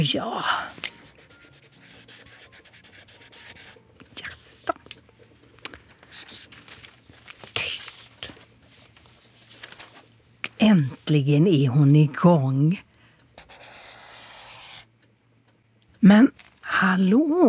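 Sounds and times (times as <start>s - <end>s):
speech: 0.0s - 0.9s, 10.6s - 12.8s, 16.0s - 16.3s, 16.9s - 17.4s
felt-tip pen squeaking and scratching on paper: 0.9s - 3.8s, 13.4s - 14.9s.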